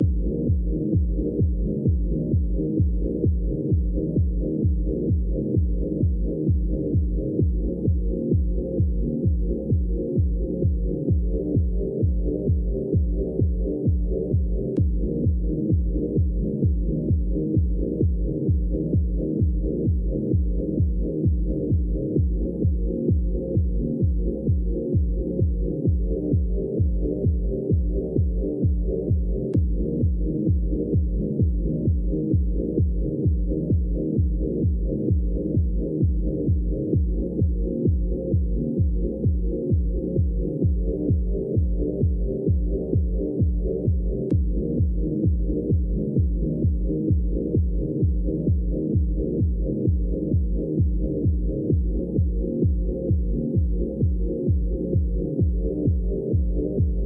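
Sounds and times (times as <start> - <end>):
epic rave music with lowpass filter: 0.0 - 57.0.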